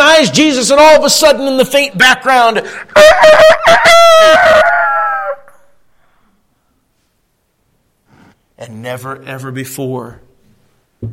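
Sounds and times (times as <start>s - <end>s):
speech: 0.2s - 5.3s, 8.6s - 10.2s
rooster crowing: 3.0s - 5.8s.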